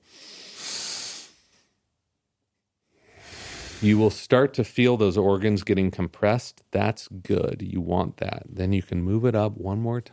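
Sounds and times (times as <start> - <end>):
deep breath drawn in as a breathing exercise: 0.0 - 1.7, 2.9 - 4.0
speech: 3.8 - 10.1.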